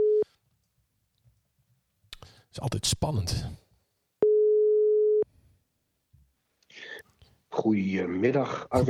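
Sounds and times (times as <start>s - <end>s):
speech: 2.5s - 3.6s, 7.6s - 8.8s
telephone ringing tone of an outgoing call: 4.2s - 5.2s.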